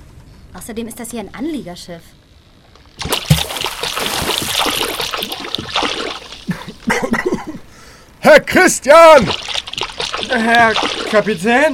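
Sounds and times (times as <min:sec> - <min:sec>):
speech: 0:00.5 - 0:02.2, 0:08.2 - 0:09.5, 0:10.3 - 0:11.7
shallow water trickling and splashing: 0:03.0 - 0:07.0, 0:09.0 - 0:11.7.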